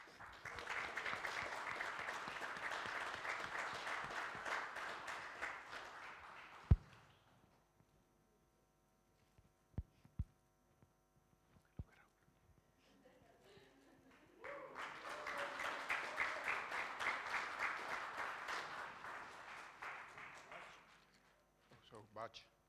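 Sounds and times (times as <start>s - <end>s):
crowd applauding for a boy receiving a certificate and badge: 0.0s - 7.1s, 14.1s - 21.1s
speech: 22.2s - 22.5s.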